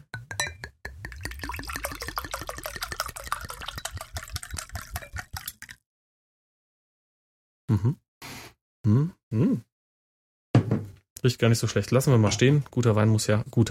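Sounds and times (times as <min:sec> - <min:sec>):
wine glugging from a bottle into a glass: 0:01.0 - 0:05.8
speech: 0:07.7 - 0:08.0, 0:08.8 - 0:09.7, 0:11.2 - 0:13.6.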